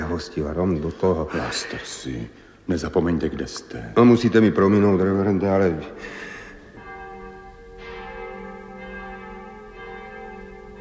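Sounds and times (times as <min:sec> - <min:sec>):
speech: 0:00.1 - 0:06.3
church bells ringing: 0:04.0 - 0:10.7.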